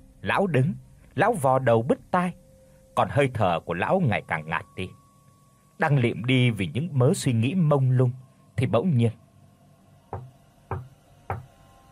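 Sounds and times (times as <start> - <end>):
faint steady hiss: 0.0 - 11.9
speech: 0.2 - 2.4, 3.0 - 5.0, 5.8 - 9.2
dry knocks on a house door: 10.1 - 11.5.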